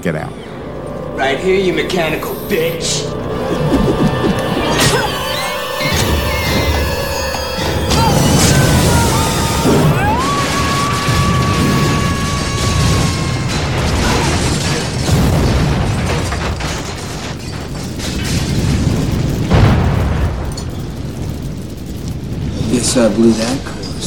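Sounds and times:
speech: 0.0s - 0.5s, 1.2s - 3.3s, 22.9s - 23.8s
swelling tones: 0.0s - 14.1s
massive gas explosion in film sound mix: 0.0s - 23.3s
crashing debris: 5.8s - 22.7s.

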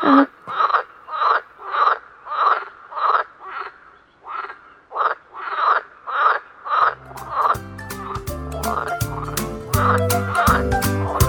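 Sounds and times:
frogs croaking: 0.0s - 7.6s
music: 7.0s - 11.2s.

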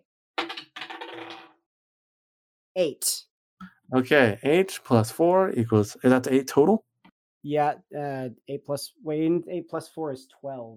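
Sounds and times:
dice rolling on a hard table in a tabletop role-playing game: 0.4s - 1.6s
speech: 2.8s - 10.7s.

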